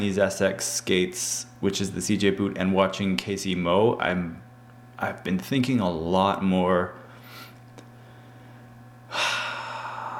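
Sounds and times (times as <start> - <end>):
speech: 0.0 - 7.0
deep breath: 7.1 - 10.1.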